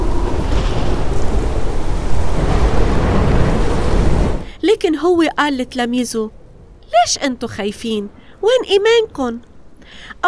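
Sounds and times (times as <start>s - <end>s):
waves in a strong storm at sea: 0.0s - 5.2s
strong storm wind at sea: 0.0s - 10.2s
speech: 5.0s - 6.4s, 7.0s - 10.2s.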